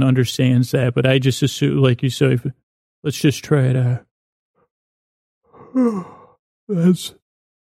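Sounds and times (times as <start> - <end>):
speech: 0.0 - 4.1, 5.7 - 7.2
person yawning: 5.6 - 7.0.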